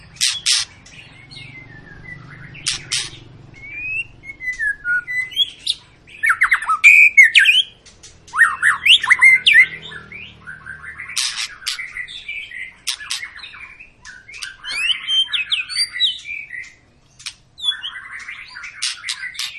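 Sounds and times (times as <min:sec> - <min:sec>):
white-rumped shama lure song: 0:00.0 - 0:19.5.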